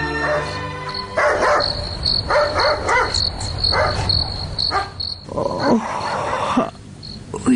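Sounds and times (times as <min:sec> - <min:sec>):
dog barking at night at a home: 0:00.2 - 0:06.6
crickets chirping at night: 0:00.2 - 0:07.5.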